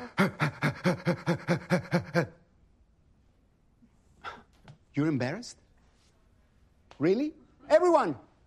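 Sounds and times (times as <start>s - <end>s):
person imitating big dog panting and barking in a breathing exercise: 0.0s - 2.3s
speech: 0.2s - 1.5s, 5.0s - 5.6s, 7.0s - 8.2s.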